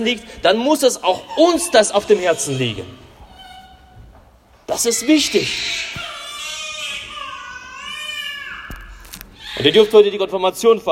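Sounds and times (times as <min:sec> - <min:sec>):
speech: 0:00.0 - 0:03.0, 0:04.8 - 0:06.1, 0:09.6 - 0:10.9
baby crying in the audience at a confirmation service: 0:01.1 - 0:04.0, 0:04.8 - 0:10.1.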